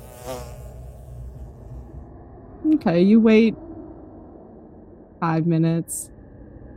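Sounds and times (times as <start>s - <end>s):
bee buzzing: 0.0s - 2.1s
speech: 2.6s - 3.6s, 5.2s - 6.2s.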